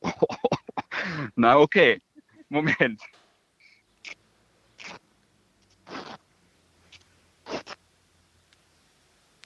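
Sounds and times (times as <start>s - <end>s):
speech: 1.3s - 3.2s
towel being torn apart by hand: 5.8s - 6.2s.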